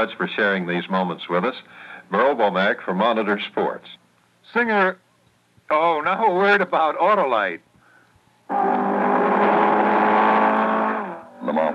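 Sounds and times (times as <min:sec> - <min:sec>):
speech: 0:00.0 - 0:05.0, 0:05.7 - 0:07.7, 0:11.5 - 0:11.7
Ford Mark IV race car engine roaring: 0:08.5 - 0:11.7.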